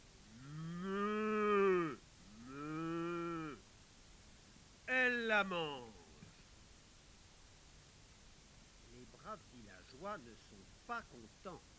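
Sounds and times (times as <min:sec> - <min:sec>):
large cow mooing: 0:00.4 - 0:03.6
speech: 0:05.3 - 0:05.9, 0:09.4 - 0:11.7.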